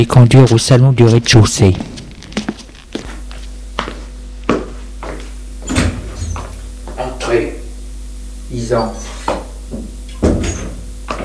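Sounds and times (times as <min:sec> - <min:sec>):
speech: 0:00.0 - 0:01.9, 0:08.7 - 0:09.1
door closing with a solid thud: 0:05.6 - 0:06.5, 0:10.1 - 0:11.2.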